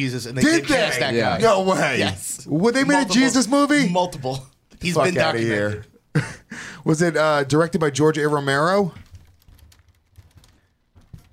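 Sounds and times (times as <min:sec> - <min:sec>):
speech: 0:00.0 - 0:09.0
typing on a computer keyboard: 0:09.0 - 0:11.3.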